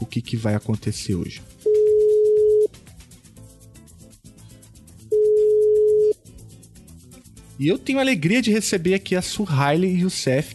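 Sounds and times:
speech: 0.1s - 1.7s, 7.6s - 10.5s
telephone ringback tone of an outgoing call: 1.7s - 2.7s, 5.1s - 6.2s.

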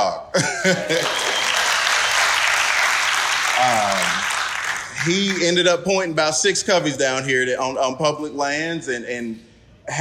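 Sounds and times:
speech: 0.1s - 1.3s, 5.0s - 9.9s
audience at a wildlife arts festival applauding: 0.8s - 5.5s.

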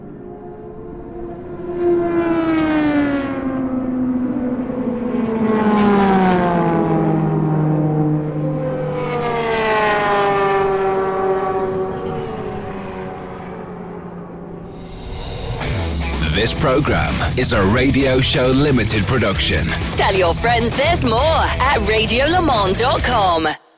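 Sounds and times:
endurance racing cars passing by on a circuit: 0.0s - 16.2s
speech: 16.6s - 23.6s.

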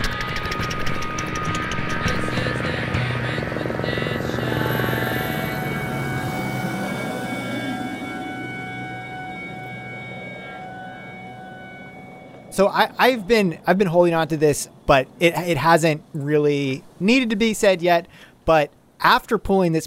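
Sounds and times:
helicopter rotor chop and engine whine: 0.0s - 19.0s
speech: 12.6s - 19.8s.

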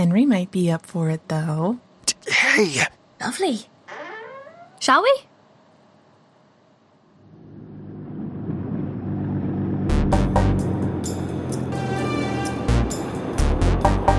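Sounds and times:
speech: 0.0s - 3.7s, 4.8s - 5.3s
heavy truck engine rumbling and idling: 7.2s - 14.1s.

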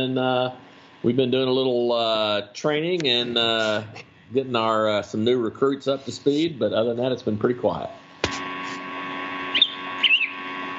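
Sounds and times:
speech: 0.0s - 8.0s
steady low background hum: 0.0s - 10.7s
pet bird chirping: 9.5s - 10.4s.

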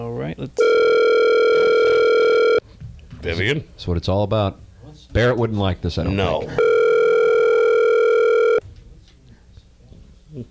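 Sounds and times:
faint noise: 0.0s - 10.4s
speech: 0.3s - 0.9s, 3.2s - 6.7s
telephone dial tone on a call-in line: 0.6s - 2.6s, 6.6s - 8.6s.

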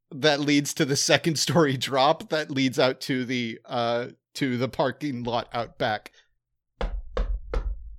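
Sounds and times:
speech: 0.1s - 6.2s
knocking on a window pane: 6.8s - 7.9s.

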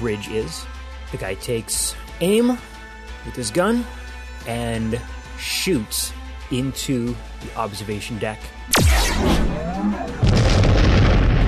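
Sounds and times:
speech: 0.0s - 10.1s
crackling rumbling blast: 8.7s - 11.4s
massive explosion: 8.7s - 11.4s.

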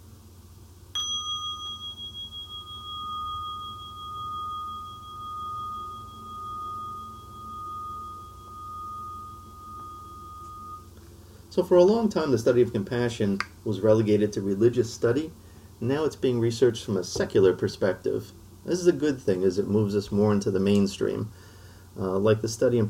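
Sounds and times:
quiet low hum: 0.0s - 22.8s
meditation bell struck and ringing out: 0.9s - 10.9s
speech: 11.6s - 22.8s.

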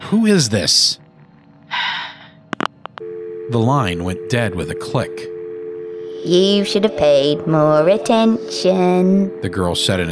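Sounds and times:
speech: 0.1s - 1.0s, 3.5s - 5.3s, 6.2s - 10.1s
heavy rasping breathing over a phone line: 1.7s - 2.4s.

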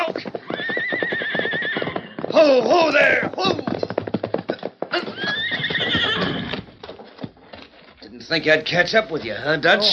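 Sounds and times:
horse whinnying: 0.0s - 6.9s
clip-clopping hoofbeats: 0.0s - 9.9s
speech: 2.4s - 3.6s, 8.3s - 9.9s.

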